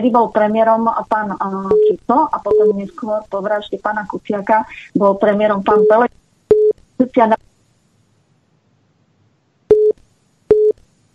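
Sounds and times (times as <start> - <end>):
speech: 0.0 - 6.2, 7.0 - 7.5
telephone busy tone after a dropped call: 5.7 - 6.8, 9.7 - 10.8.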